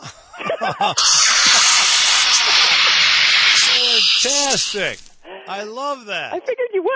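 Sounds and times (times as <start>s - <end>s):
laughter: 0.0s - 1.1s, 2.2s - 3.0s
speech: 0.6s - 1.6s, 4.2s - 6.9s
automatic toilet air freshener spraying with a loud hiss: 1.0s - 5.3s.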